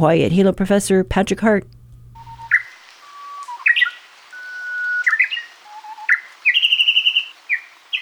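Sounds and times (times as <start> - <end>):
speech: 0.0 - 1.8
Japanese bush warbler singing: 2.2 - 8.0.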